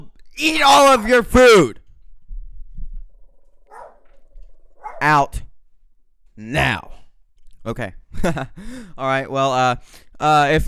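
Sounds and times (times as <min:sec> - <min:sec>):
speech: 0:00.4 - 0:01.8, 0:05.0 - 0:05.5, 0:06.4 - 0:07.0, 0:07.6 - 0:10.6
dog barking: 0:03.7 - 0:05.1.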